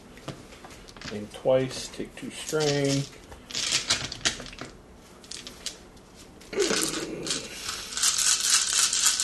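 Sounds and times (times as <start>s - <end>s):
speech: 1.2s - 3.2s
many small dice tumbling and knocking together: 2.4s - 5.8s, 6.6s - 9.2s.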